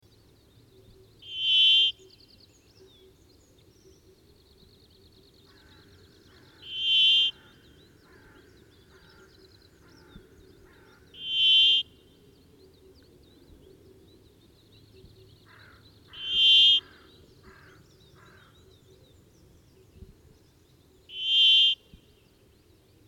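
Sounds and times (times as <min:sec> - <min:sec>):
brambling calling: 0:01.2 - 0:02.1, 0:06.4 - 0:12.0, 0:15.5 - 0:18.5, 0:21.1 - 0:21.9.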